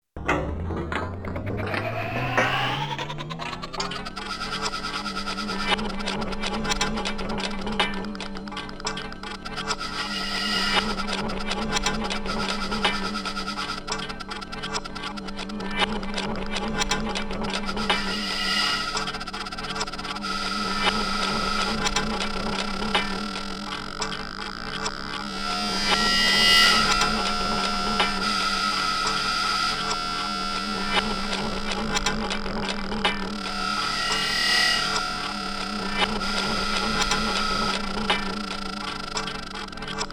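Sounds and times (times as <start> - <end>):
old machine running: 0.2 - 40.1.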